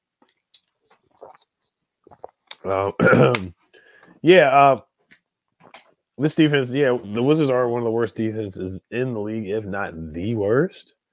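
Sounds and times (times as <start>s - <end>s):
faint wet mouth clicks while sipping water: 0.2s - 2.7s
soft swallow of water: 1.0s - 1.5s, 2.1s - 3.6s
speech: 2.6s - 3.6s, 4.2s - 4.9s, 6.2s - 11.0s.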